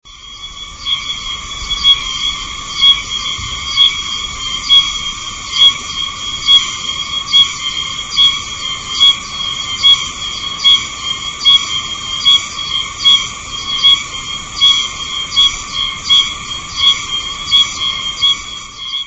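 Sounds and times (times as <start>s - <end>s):
oosimazemi cicada call: 0.0s - 19.0s.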